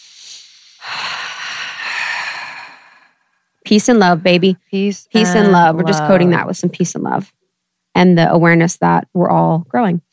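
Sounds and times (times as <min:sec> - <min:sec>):
people taking a deep breath together: 0:00.0 - 0:03.3
quiet hiss: 0:00.0 - 0:10.1
speech: 0:03.7 - 0:07.4, 0:08.0 - 0:10.1.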